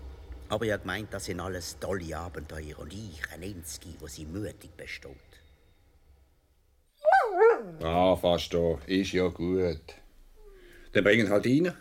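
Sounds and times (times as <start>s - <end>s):
speech: 0.5s - 5.4s, 7.8s - 10.0s, 10.9s - 11.7s
begging dog whining and yelping: 7.0s - 7.8s.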